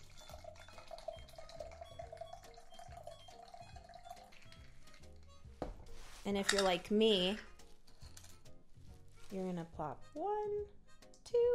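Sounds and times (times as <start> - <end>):
cocktail being poured into a glass: 0.0 - 5.3
speech: 6.2 - 7.5, 9.3 - 11.5.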